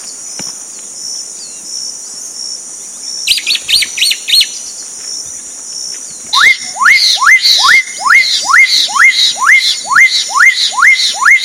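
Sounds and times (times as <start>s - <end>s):
insect buzz: 0.0s - 11.4s
black-capped donacobius calls in São Paulo state, Brazil: 3.3s - 4.6s, 6.3s - 11.4s.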